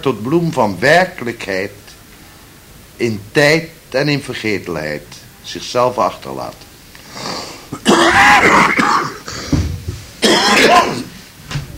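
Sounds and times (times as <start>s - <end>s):
speech: 0.0s - 1.8s, 3.0s - 7.2s
harsh coughing fit with throat-clearing hacks: 7.7s - 9.6s, 10.2s - 11.2s.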